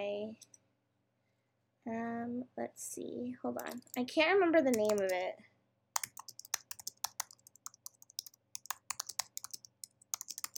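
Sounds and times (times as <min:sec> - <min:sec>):
speech: 0:01.8 - 0:05.5
typing on a computer keyboard: 0:03.6 - 0:04.0, 0:04.7 - 0:05.2, 0:06.0 - 0:10.5.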